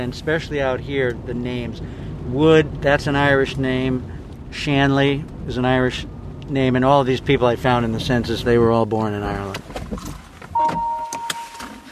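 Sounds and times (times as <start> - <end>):
speech: 0.0 - 10.2
mechanical clunks of someone getting out of a car: 10.5 - 11.9
steady electronic chime: 10.6 - 11.9.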